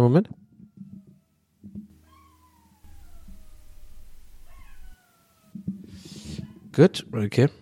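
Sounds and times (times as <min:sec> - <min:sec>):
speech: 0:00.0 - 0:00.4, 0:06.8 - 0:07.6
dog howling: 0:00.4 - 0:05.7
low rumble: 0:02.8 - 0:05.0
noisy bursts: 0:02.8 - 0:05.0.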